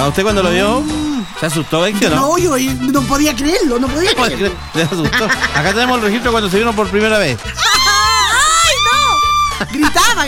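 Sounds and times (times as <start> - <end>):
speech: 0.0 - 7.7, 9.6 - 10.2
laughter: 4.0 - 6.7, 7.5 - 8.4
young girl screaming in fright: 7.6 - 9.7.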